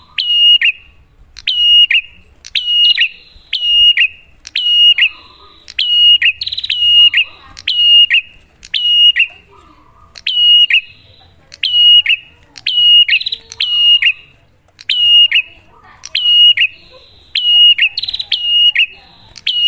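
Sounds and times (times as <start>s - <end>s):
prinia song duet of two song types: 0.0s - 19.6s.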